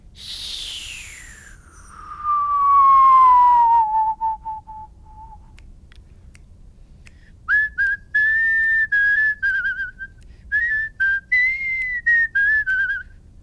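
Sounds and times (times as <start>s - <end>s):
person whistling: 0.2s - 5.6s, 7.5s - 13.1s.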